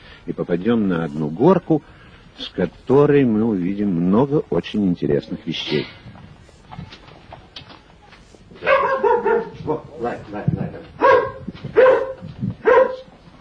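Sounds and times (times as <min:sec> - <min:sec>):
speech: 0:00.2 - 0:06.1
dog barking at visitors: 0:08.6 - 0:09.6, 0:11.0 - 0:13.1.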